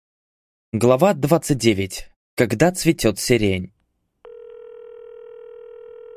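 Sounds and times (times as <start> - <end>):
speech: 0.7 - 3.8
buzzy telephone ringing tone while waiting for an answer: 4.2 - 6.1.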